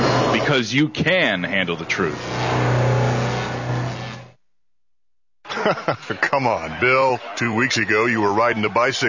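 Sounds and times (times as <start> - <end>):
speech: 0.5 - 2.8, 5.6 - 9.0
car engine revving as car arrives: 1.7 - 4.4
laughter: 5.5 - 9.0.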